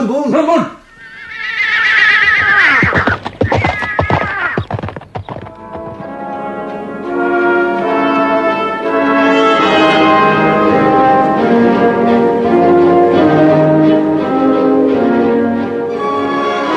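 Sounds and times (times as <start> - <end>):
speech: 0.1 - 0.8
horse whinnying while being mounted by a rider: 0.8 - 6.1
horse hooves clip-clopping: 1.1 - 7.9
sustained tonal music: 5.4 - 16.7.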